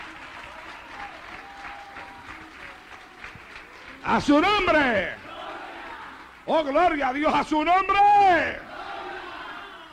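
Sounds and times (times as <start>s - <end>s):
audience applauding: 0.0s - 6.5s
speech: 4.0s - 5.2s, 6.5s - 8.6s.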